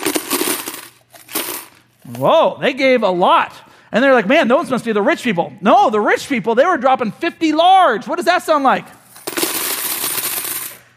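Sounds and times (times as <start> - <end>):
many coins poured into a bucket: 0.0 - 1.9, 9.0 - 10.9
speech: 2.0 - 9.0.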